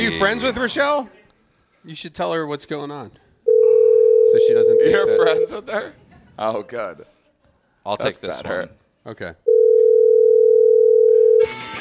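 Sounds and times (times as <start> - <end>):
speech: 0.1 - 1.2, 1.8 - 3.2, 4.3 - 7.1, 7.8 - 9.5
telephone dial tone during outgoing call: 3.5 - 4.4, 9.5 - 11.5.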